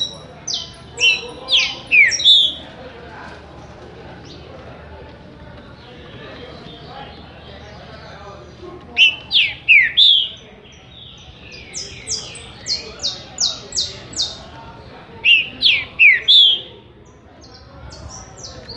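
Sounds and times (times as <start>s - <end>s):
green-winged saltator singing rich slurred whistled notes: 0.0s - 2.6s, 9.0s - 14.4s, 15.2s - 16.8s.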